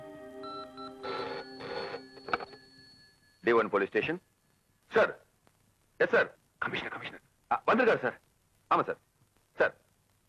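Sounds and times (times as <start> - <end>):
telephone ringing on a call to a police commissioner: 0.0 - 4.1
faint steady tone: 0.0 - 5.8
speech: 3.4 - 4.3, 5.0 - 5.2, 6.1 - 6.4, 7.7 - 9.1.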